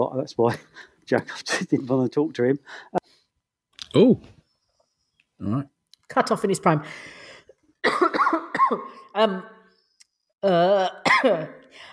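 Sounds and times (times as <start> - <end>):
speech: 0.0 - 3.0, 3.9 - 4.4, 5.4 - 7.2, 8.6 - 9.6, 10.4 - 11.9
person having a coughing fit: 7.8 - 9.1, 11.0 - 11.6.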